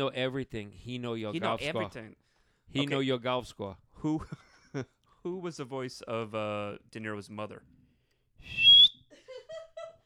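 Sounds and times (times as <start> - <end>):
speech: 0.0 - 7.8
shrill Mexican mouth whistle sliding upward: 8.4 - 9.1.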